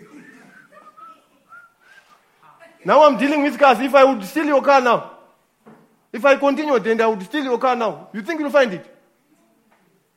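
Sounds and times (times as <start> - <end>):
laughter: 0.0 - 1.5
person whistling a short faint tune: 0.4 - 2.2
speech: 2.8 - 5.1, 6.2 - 8.9.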